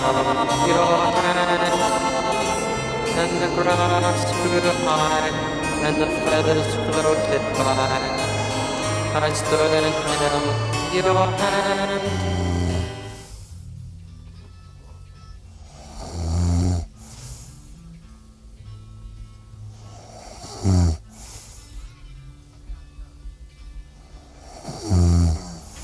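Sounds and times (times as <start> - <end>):
person snoring in their sleep: 0.0 - 13.4, 15.7 - 17.6, 19.8 - 21.6, 24.2 - 25.8
faint music: 0.0 - 25.8
speech: 3.3 - 8.2, 9.2 - 12.6
breathing of a sleeping person: 16.9 - 18.1, 19.7 - 22.3, 23.8 - 25.8.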